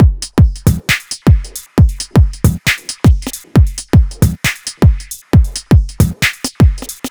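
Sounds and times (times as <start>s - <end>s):
dubstep drum loop high break: 0.0s - 7.0s.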